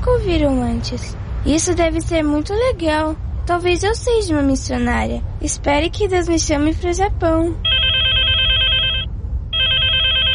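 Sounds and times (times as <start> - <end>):
low hum: 0.0 - 10.3
speech: 0.1 - 7.7
telephone bell ringing: 7.6 - 10.3.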